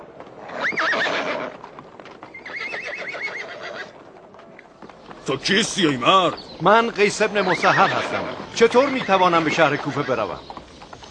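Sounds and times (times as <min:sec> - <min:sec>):
ridden horse hooves pattering: 0:00.0 - 0:11.0
ridden horse whinnying: 0:00.4 - 0:04.1, 0:07.2 - 0:10.4
speech: 0:05.3 - 0:10.6.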